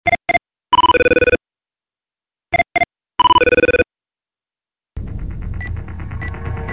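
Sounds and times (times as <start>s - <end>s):
Nokia 6230i mobile phone ringtone: 0.0s - 1.4s, 2.5s - 3.9s.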